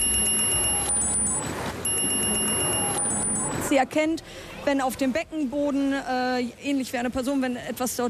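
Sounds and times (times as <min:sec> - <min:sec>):
smartwatch notification alert at a swimming pool: 0:00.0 - 0:03.7
speech: 0:03.7 - 0:08.0.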